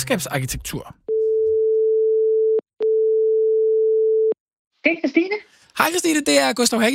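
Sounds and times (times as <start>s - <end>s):
speech: 0.1s - 1.1s, 4.8s - 6.9s
single-pitched telephone ringing tone while placing a call: 1.1s - 4.4s.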